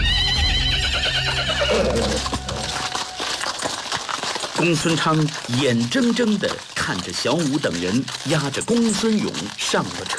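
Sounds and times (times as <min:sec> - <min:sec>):
horse whinnying near a horse-drawn carriage with a four-horse team: 0:00.0 - 0:05.7
speech: 0:04.6 - 0:10.1.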